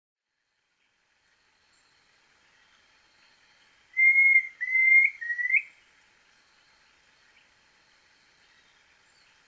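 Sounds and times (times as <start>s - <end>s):
Planalto tyrannulet Phyllomyias fasciatus brevirostris whistled notes: 4.0s - 5.8s.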